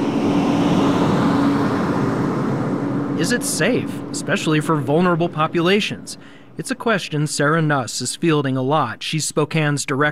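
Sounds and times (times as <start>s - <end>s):
buses pulling up with engines running at a dementia care facility: 0.0s - 8.0s
speech: 3.2s - 10.1s.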